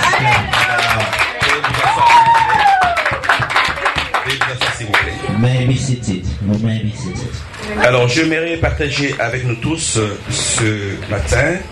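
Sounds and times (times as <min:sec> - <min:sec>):
church congregation clapping: 0:00.0 - 0:05.3
speech: 0:05.7 - 0:11.7.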